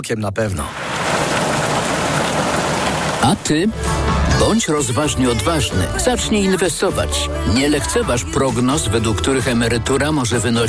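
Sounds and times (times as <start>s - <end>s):
speech: 0.0s - 1.3s, 3.2s - 10.6s
steady dense rainfall: 0.7s - 4.4s
low rumbling undertone: 0.7s - 4.6s.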